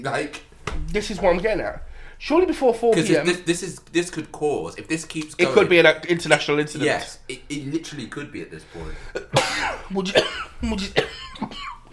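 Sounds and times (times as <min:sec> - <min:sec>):
speech: 0:00.0 - 0:11.8
person coughing: 0:08.8 - 0:11.9.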